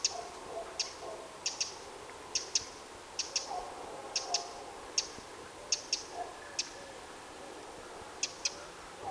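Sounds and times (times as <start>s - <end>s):
faint steady background hiss: 0.0s - 9.0s
Eurasian wren Troglodytes troglodytes clicking calls: 0.8s - 1.8s, 2.4s - 3.5s, 4.2s - 5.1s.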